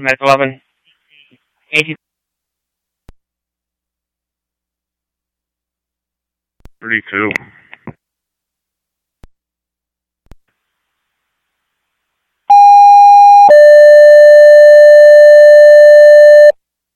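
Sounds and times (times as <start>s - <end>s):
speech: 0.0s - 0.6s, 1.7s - 2.0s, 6.8s - 7.6s
radio dispatch alert tones: 12.5s - 16.6s.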